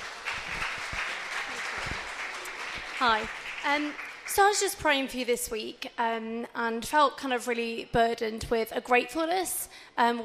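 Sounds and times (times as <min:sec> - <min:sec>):
louder individual claps: 0:00.0 - 0:04.8
crowd applauding: 0:00.0 - 0:05.1
speech: 0:03.0 - 0:10.2.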